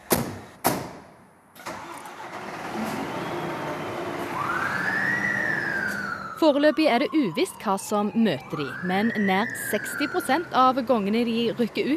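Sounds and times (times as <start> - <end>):
heavy fire engine cranking, rumbling and pulling away: 1.6 - 11.9
fire engine siren wailing: 3.2 - 11.5
speech: 6.4 - 11.9.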